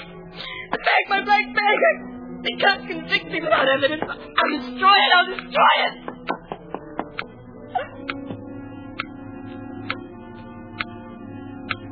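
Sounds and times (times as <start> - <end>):
speech: 0.7 - 6.1
clock ticking: 2.5 - 11.0, 11.6 - 11.8.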